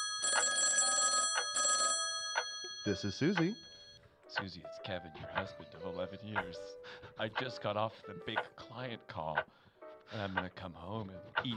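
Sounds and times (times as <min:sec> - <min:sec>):
electronic telephone ringing: 0:00.0 - 0:04.0
speech: 0:02.8 - 0:03.7, 0:04.3 - 0:11.5.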